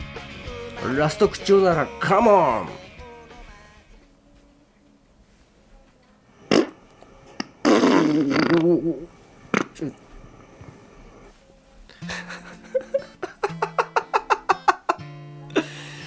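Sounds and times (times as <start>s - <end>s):
speech: 0.2s - 2.8s, 8.2s - 9.2s, 9.8s - 10.0s
person imitating farts with their mouth: 6.5s - 10.1s
laughter: 12.1s - 16.0s.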